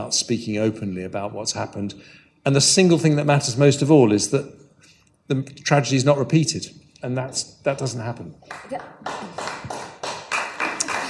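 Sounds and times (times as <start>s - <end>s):
speech: 0.0s - 4.6s, 5.3s - 9.8s
small audience applause: 8.5s - 11.0s.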